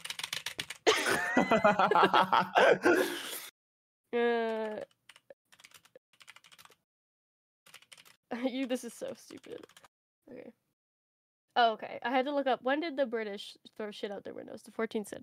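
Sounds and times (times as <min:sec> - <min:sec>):
frantic typing on computer keyboard: 0:00.0 - 0:00.8, 0:04.5 - 0:06.8, 0:07.7 - 0:09.9
person giggling: 0:00.8 - 0:03.5
speech: 0:01.5 - 0:03.3, 0:04.1 - 0:04.9, 0:08.4 - 0:10.6, 0:11.6 - 0:15.2.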